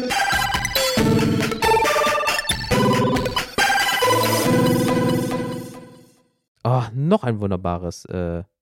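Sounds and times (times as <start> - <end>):
bright electronic podcast intro jingle with chiming synth tones: 0.4 - 6.2
speech: 7.0 - 8.5.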